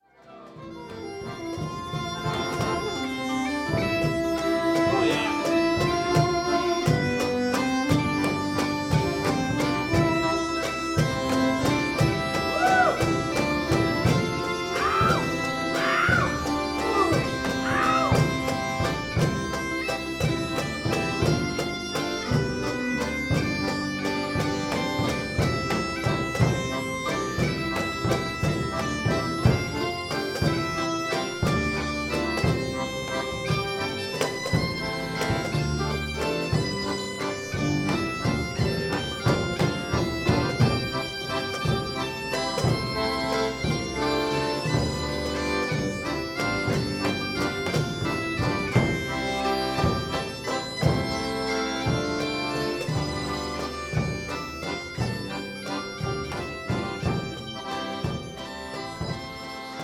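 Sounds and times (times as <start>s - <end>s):
bagpipe band playing: 0.0s - 59.8s.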